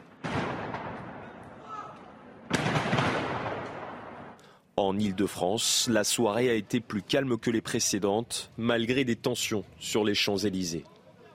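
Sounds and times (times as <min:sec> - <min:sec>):
stockpile of fireworks exploding with booming blasts and crackling roar: 0:00.0 - 0:01.6, 0:02.4 - 0:04.4
speech: 0:04.8 - 0:10.9.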